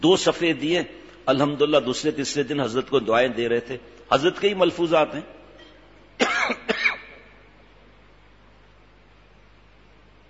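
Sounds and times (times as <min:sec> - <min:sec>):
speech: 0:00.0 - 0:05.4
quiet room noise: 0:00.0 - 0:10.2
harsh coughs: 0:06.2 - 0:07.3.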